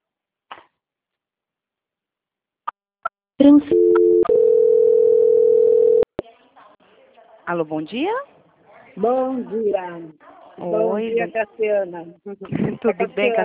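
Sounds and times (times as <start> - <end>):
speech: 3.4 - 4.0, 7.5 - 8.3, 9.0 - 13.4
electronic telephone tone while a call is transferred to a quality-control department: 3.7 - 6.1.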